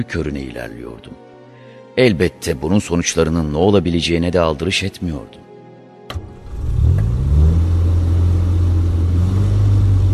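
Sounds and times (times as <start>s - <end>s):
speech: 0.0s - 1.3s, 2.0s - 5.5s
engine cranking, catching and revving during a test: 6.1s - 10.1s.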